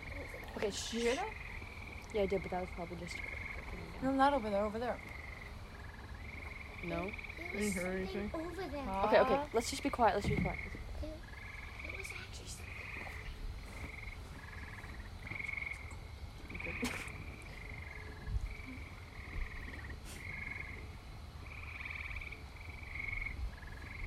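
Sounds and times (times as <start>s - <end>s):
low hum: 0.0s - 24.0s
tree frogs croaking in a loud chorus: 0.0s - 24.0s
speech: 0.6s - 1.4s, 2.1s - 5.2s, 6.8s - 11.2s.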